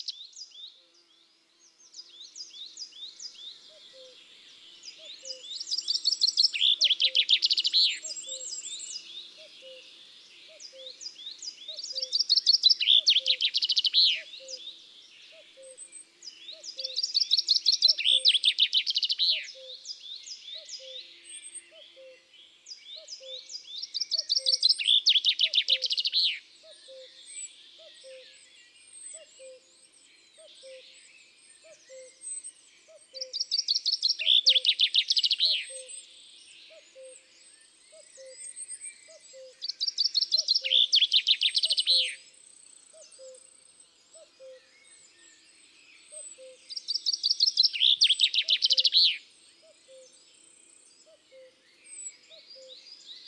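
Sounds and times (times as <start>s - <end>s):
common chaffinch singing in woods and forests: 1.9s - 28.2s, 31.6s - 36.1s, 36.7s - 42.3s, 44.1s - 50.2s.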